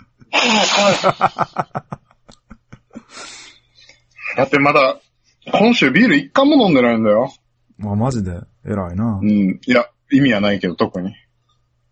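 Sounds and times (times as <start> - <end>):
laughter: 0.0 - 3.3
loud voiced sneeze: 0.3 - 1.2
speech: 0.6 - 1.8, 4.5 - 5.0, 5.6 - 11.2
noisy breath: 2.9 - 4.2
short rhythmic breathy huffs: 3.0 - 4.1.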